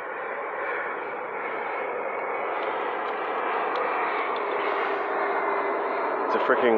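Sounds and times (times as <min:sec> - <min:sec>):
private jet with about six windows flying in overhead: 0:00.0 - 0:06.7
speech: 0:06.4 - 0:06.7.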